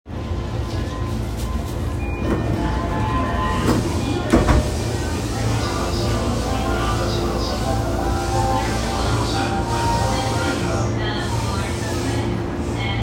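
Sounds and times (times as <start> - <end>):
Keihin-Tohoku Line train at Okachimachi north: 0.1 - 13.0.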